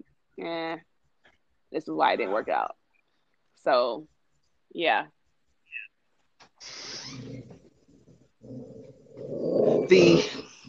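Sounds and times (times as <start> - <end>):
speech: 0.4 - 0.9, 1.7 - 2.8, 3.6 - 4.1, 4.7 - 5.2, 9.6 - 10.3
pet dog growling and grumbling: 7.1 - 10.6.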